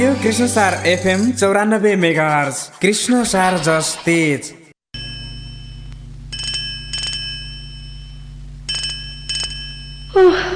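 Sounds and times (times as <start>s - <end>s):
speech: 0.0s - 4.6s
telephone ringing with electronic trills: 5.0s - 10.1s
steady low hum: 5.0s - 10.5s.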